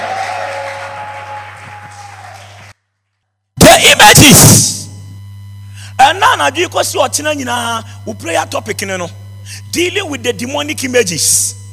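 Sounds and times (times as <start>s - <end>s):
church audience applause: 0.0s - 2.8s
speech: 3.9s - 4.8s, 6.1s - 11.6s.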